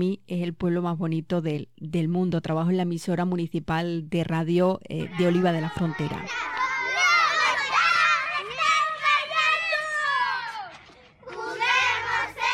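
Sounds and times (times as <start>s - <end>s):
speech: 0.0s - 6.6s
children playing and shouting in the street: 5.0s - 12.5s.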